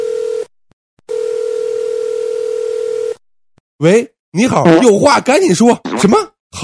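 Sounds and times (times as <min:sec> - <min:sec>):
telephone dial tone: 0:00.0 - 0:00.5, 0:01.1 - 0:03.2
speech: 0:03.8 - 0:06.6.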